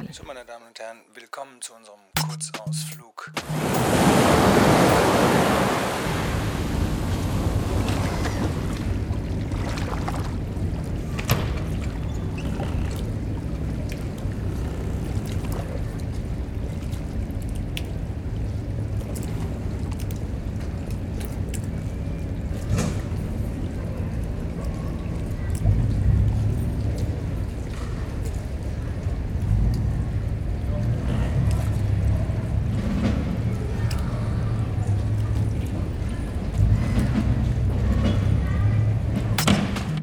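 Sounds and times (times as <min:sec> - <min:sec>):
speech: 0:00.1 - 0:05.2
water lapping and sloshing: 0:03.2 - 0:40.0
broad rush of surf: 0:03.4 - 0:10.0.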